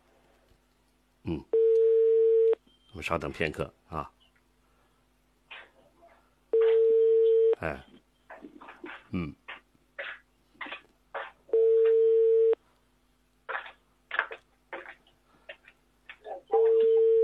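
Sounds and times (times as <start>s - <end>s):
speech: 1.2s - 1.6s, 3.0s - 4.2s, 7.6s - 7.9s, 9.1s - 9.4s
telephone ringback tone while waiting for an answer: 1.5s - 2.6s, 6.5s - 7.6s, 11.5s - 12.6s, 16.6s - 17.2s.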